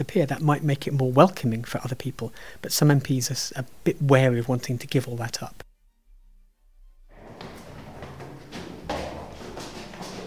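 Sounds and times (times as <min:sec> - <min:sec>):
speech: 0:00.0 - 0:05.6
heavy door creaking and scraping open: 0:07.1 - 0:10.2
dull knock: 0:07.3 - 0:10.2.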